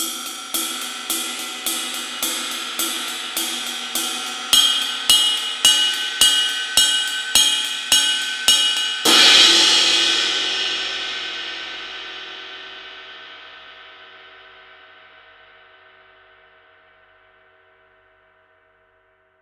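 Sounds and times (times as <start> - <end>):
ride cymbal: 0.0 - 12.1.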